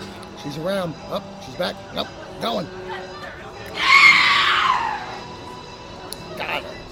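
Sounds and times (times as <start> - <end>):
speech: 0.4 - 3.2
shrill raspy banshee-like scream: 3.7 - 5.3.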